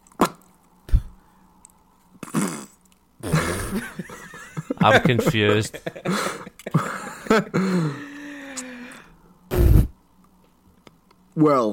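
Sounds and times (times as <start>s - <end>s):
raspy fart: 2.2s - 4.0s, 9.5s - 10.0s
laughter: 3.4s - 8.4s
speech: 3.7s - 8.0s, 11.4s - 11.7s.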